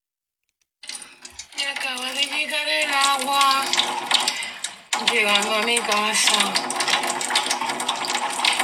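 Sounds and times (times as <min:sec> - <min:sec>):
water gushing from a tap at a home: 0:00.8 - 0:08.6
speech: 0:02.6 - 0:04.2, 0:05.0 - 0:07.0.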